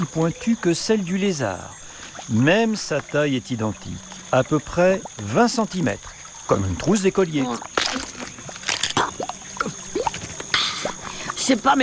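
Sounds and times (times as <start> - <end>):
speech: 0.0 - 8.2, 11.5 - 11.8
faint chirps: 0.0 - 11.8
steady outdoor hiss: 0.0 - 11.8
Hylonomus reptile biting into an insect's rigid shell: 7.4 - 11.1.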